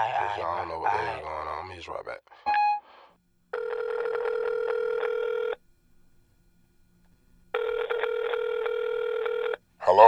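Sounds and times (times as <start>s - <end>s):
speech: 0.0s - 2.6s
brief dialing beep: 2.5s - 2.9s
phone ringback tone from an outgoing call: 2.5s - 2.9s, 3.5s - 5.6s, 7.5s - 9.6s.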